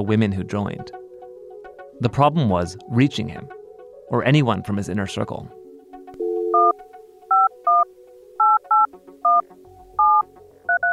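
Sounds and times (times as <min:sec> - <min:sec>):
speech: 0:00.0 - 0:01.0, 0:02.0 - 0:05.6
telephone number dialed on a touch-tone keypad: 0:06.2 - 0:06.7, 0:07.3 - 0:07.8, 0:08.4 - 0:09.4, 0:10.0 - 0:10.9.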